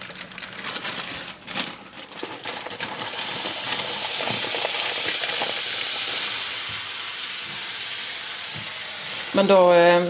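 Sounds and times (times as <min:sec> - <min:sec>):
pre-chopped bacon and onion sizzling in a frying pan: 0:02.9 - 0:10.0
speech: 0:09.4 - 0:10.0.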